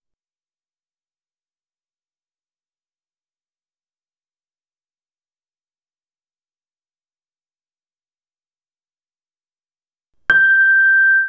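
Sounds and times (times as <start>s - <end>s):
piano note G6 as a sinusoid: 10.3s - 11.2s.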